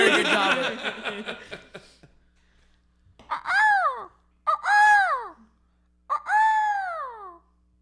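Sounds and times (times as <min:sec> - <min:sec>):
laughter: 0:00.0 - 0:02.1
person imitating a hawk's cry with screeches: 0:03.3 - 0:05.5, 0:06.1 - 0:07.5.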